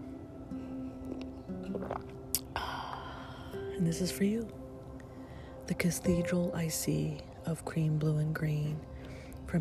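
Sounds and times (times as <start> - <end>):
steady low hum: 0.0 - 9.5
person sipping coffee: 1.0 - 3.6
speech: 3.8 - 4.6, 5.7 - 8.9.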